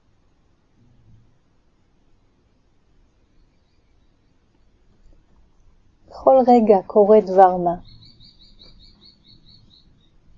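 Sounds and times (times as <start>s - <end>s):
soft low hum: 0.0s - 10.3s
bird chirping: 3.2s - 5.7s, 6.3s - 10.3s
speech: 6.3s - 8.0s.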